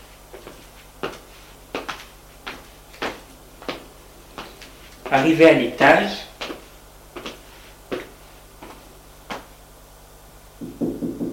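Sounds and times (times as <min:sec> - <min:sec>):
low steady hum: 0:00.0 - 0:11.3
speech: 0:05.1 - 0:06.3
sharp knocks on a door: 0:10.6 - 0:11.3.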